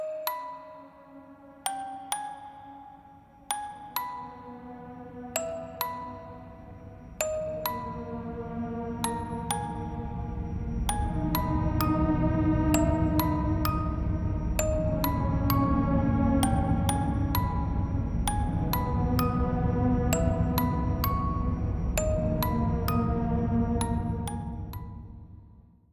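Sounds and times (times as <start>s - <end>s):
dark music: 0.2s - 25.6s.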